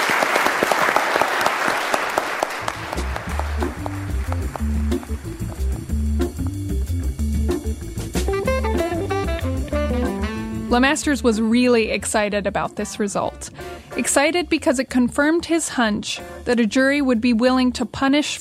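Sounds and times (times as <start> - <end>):
audience applause for a mock jury: 0.0 - 5.8
steady bass-heavy musical passage: 2.6 - 15.4
speech: 10.7 - 18.3.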